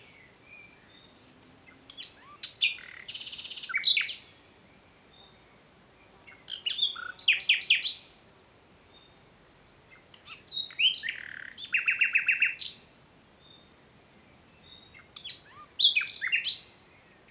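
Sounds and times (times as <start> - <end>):
Common nightingale Luscinia megarhynchos song: 0.0 - 17.2.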